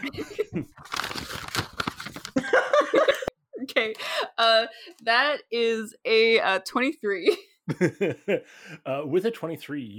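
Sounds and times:
speech: 0:00.0 - 0:01.2, 0:04.4 - 0:09.9
paper character sheet crinkling: 0:00.6 - 0:02.5.

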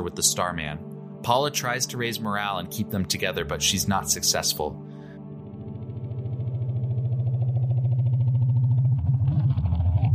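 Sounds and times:
speech: 0:00.1 - 0:04.9
flying machine engine droning: 0:05.3 - 0:09.2.

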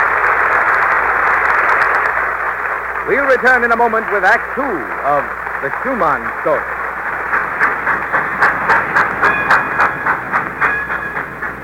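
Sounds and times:
rail cars clattering past in a freight yard: 0:00.0 - 0:11.6
wheels clicking over track joints: 0:00.0 - 0:11.6
speech: 0:03.1 - 0:06.8
faint metallic squeal: 0:09.3 - 0:11.6.

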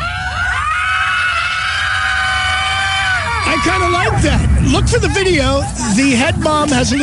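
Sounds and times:
group of women screaming on cue: 0:00.0 - 0:04.3
low rumbling background: 0:00.0 - 0:07.0
speech: 0:03.6 - 0:07.0.

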